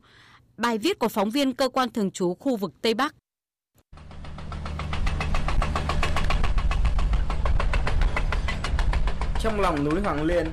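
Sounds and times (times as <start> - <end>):
speech: 0.6 - 3.2, 9.4 - 10.5
heavy drilling machinery engine drone at tunnel site: 3.9 - 10.5
rapid regular percussive knocking of drilling machinery: 3.9 - 10.5.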